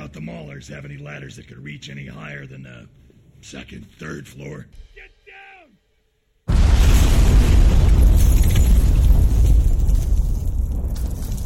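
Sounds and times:
speech: 0:00.1 - 0:05.4
pipe bomb explosion in a firefight: 0:06.5 - 0:11.4.

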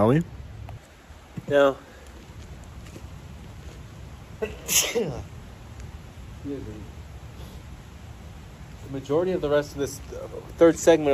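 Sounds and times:
speech: 0:00.0 - 0:00.4, 0:01.5 - 0:01.9, 0:04.4 - 0:05.3, 0:06.4 - 0:06.9, 0:08.9 - 0:11.1
person sneezing: 0:04.4 - 0:05.3.

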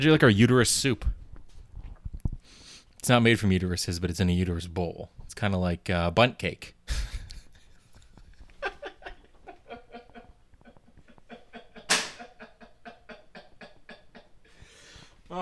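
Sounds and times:
speech: 0:00.0 - 0:01.2, 0:03.0 - 0:07.1
soft laughter and breathy chuckling: 0:06.9 - 0:14.3.

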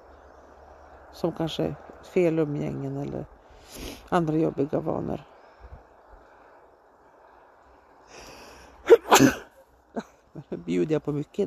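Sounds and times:
speech: 0:01.2 - 0:05.3, 0:10.7 - 0:11.4
short sharp sniff: 0:03.6 - 0:04.1
soft breathy intake: 0:08.1 - 0:09.2
sneeze: 0:08.9 - 0:09.6.

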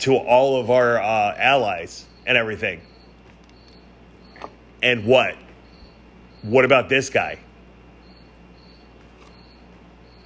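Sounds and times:
speech: 0:00.0 - 0:02.9, 0:04.4 - 0:05.4, 0:06.4 - 0:07.4
cricket chirping: 0:01.4 - 0:06.8, 0:07.8 - 0:10.2.

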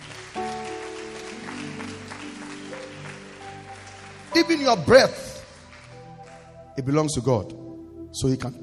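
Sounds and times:
audience applauding: 0:00.0 - 0:06.6
keyboard or organ holding steady chords: 0:00.0 - 0:08.6
speech: 0:04.4 - 0:05.2, 0:06.8 - 0:08.6.

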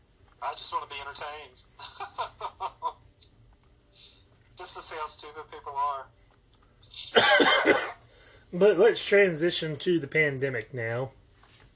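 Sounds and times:
speech: 0:00.7 - 0:01.9, 0:05.0 - 0:06.2, 0:08.5 - 0:11.2
raspy cough: 0:07.1 - 0:08.0
sharp inhale: 0:08.1 - 0:08.5.

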